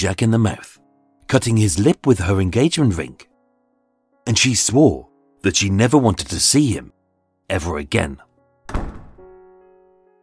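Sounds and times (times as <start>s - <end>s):
speech: 0.0s - 3.3s, 4.3s - 8.8s
door slamming shut: 8.6s - 9.4s.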